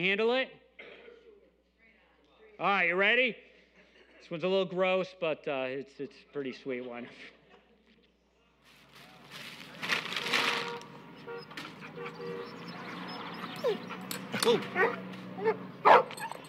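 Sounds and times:
speech: 0.0s - 0.6s, 2.6s - 3.5s, 4.2s - 7.4s, 13.6s - 16.0s
dog whimpering: 11.2s - 16.4s.

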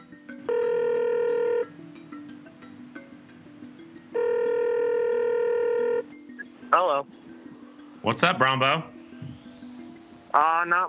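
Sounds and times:
ringing tone of an outgoing telephone call: 0.5s - 1.7s, 4.2s - 6.1s
speech: 6.8s - 7.2s, 8.0s - 9.0s, 10.3s - 10.8s.

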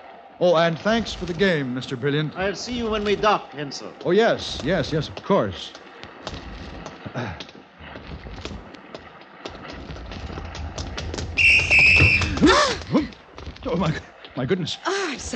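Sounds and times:
speech: 0.4s - 6.4s, 13.8s - 15.3s
clattering footsteps around a ship's deck: 0.7s - 14.6s
shrill whistle blown by a man doing wind sprints on a ship's deck: 11.4s - 12.4s.

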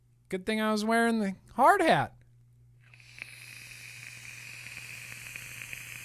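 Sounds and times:
low constant hum: 0.0s - 6.0s
speech: 0.3s - 2.2s
single-coil atomizer firing on a mechanical side-by-side vape mod: 2.8s - 6.0s.

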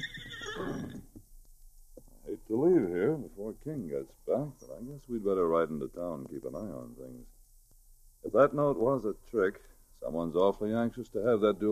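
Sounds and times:
horse whinnying at a campsite outside a town: 0.0s - 1.2s
speech: 2.6s - 7.4s, 8.2s - 11.7s.

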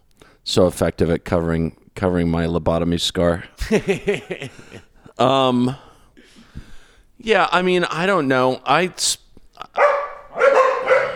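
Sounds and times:
speech: 0.4s - 5.9s, 7.2s - 9.7s
laughter: 3.6s - 5.2s
corgi barking: 9.8s - 11.1s.

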